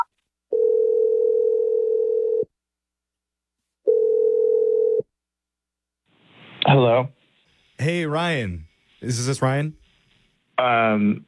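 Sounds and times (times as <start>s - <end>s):
telephone ringing tones over an outgoing call: 0.0s - 2.4s, 3.9s - 5.0s
speech: 7.0s - 7.2s, 7.8s - 9.8s, 10.6s - 11.2s.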